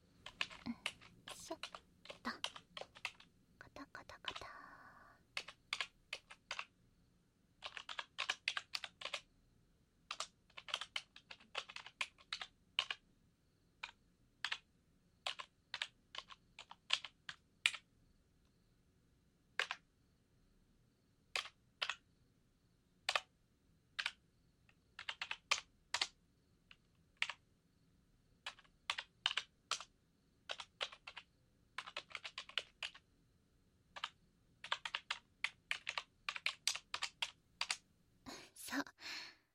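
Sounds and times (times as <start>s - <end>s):
quiet hum: 0.0s - 39.5s
computer keyboard typing: 0.2s - 4.6s, 5.3s - 6.7s, 7.6s - 9.3s, 10.1s - 13.0s, 13.8s - 17.9s, 19.6s - 19.8s, 21.3s - 22.0s, 23.1s - 23.3s, 24.0s - 24.2s, 24.9s - 27.4s, 28.4s - 33.0s, 33.9s - 37.8s.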